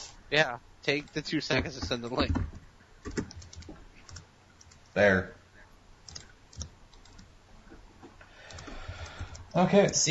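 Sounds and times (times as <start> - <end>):
speech: 0.3 - 3.3, 5.0 - 5.4, 9.6 - 10.0
computer keyboard key clicks while typing a URL: 2.3 - 4.8, 6.1 - 7.3, 8.4 - 10.0.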